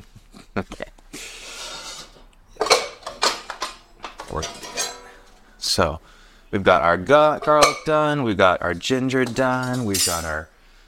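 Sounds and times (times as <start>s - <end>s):
speech: 0.6s - 0.8s, 5.8s - 10.5s
wok and pans clattering while cooking pumpkin curry: 1.6s - 5.5s, 7.3s - 8.0s, 9.2s - 10.4s.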